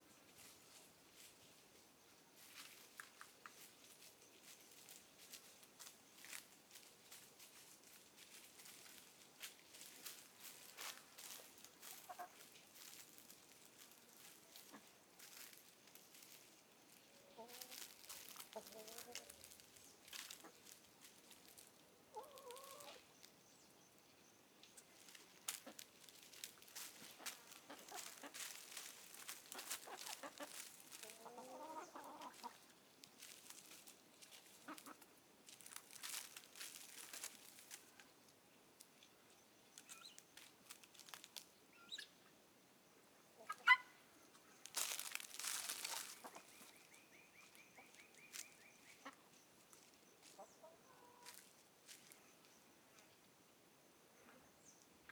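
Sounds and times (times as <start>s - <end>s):
chickens walking on grass outside the coop: 0.0s - 55.0s
chickens clucking outside the coop: 2.4s - 23.8s, 24.6s - 38.2s, 43.2s - 52.2s.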